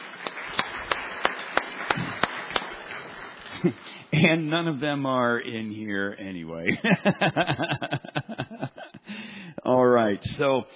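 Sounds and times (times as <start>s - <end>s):
banquet audience applause: 0.0s - 4.5s
one clapper beating steady rhythmic sharp claps: 0.0s - 5.1s
laughter: 3.5s - 4.5s, 6.6s - 9.2s
speech: 3.6s - 8.0s, 10.1s - 10.7s.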